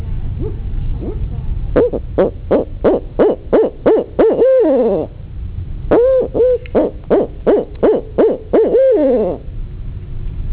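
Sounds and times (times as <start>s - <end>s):
low background rumble: 0.0s - 10.5s
barred owl hooting: 1.8s - 5.1s, 5.9s - 9.5s.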